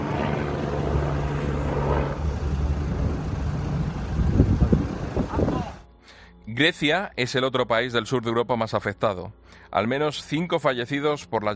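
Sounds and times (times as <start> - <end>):
light firefighting aircraft flying overhead during wildfires near Palermo: 0.0 - 5.8
speech: 6.5 - 11.5.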